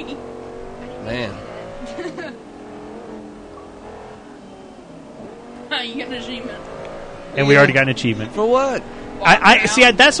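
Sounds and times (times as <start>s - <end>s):
race car engine revving in racing video game: 0.0s - 10.1s
speech: 1.1s - 1.5s, 5.8s - 10.1s.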